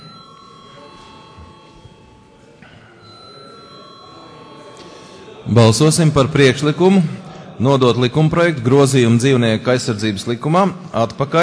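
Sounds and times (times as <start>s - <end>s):
parliament chair's electric bell ringing to call a vote: 0.0s - 6.7s
low murmur of voices in a parliament chamber: 0.0s - 11.4s
speech: 5.4s - 11.4s.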